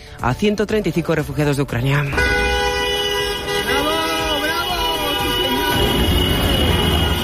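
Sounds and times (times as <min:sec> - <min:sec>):
busy street noise: 0:00.0 - 0:07.2
speech: 0:00.2 - 0:02.4
taxi car horns honking together in a convoy: 0:02.0 - 0:07.2.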